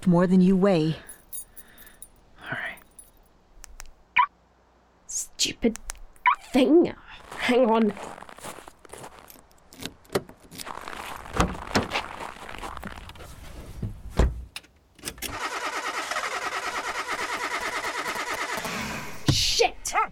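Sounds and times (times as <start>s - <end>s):
speech: 0.0s - 1.1s, 5.4s - 5.9s, 6.5s - 8.2s
rustling of someone getting into a truck cab: 7.2s - 14.5s
truck engine cranking without catching: 14.6s - 19.2s.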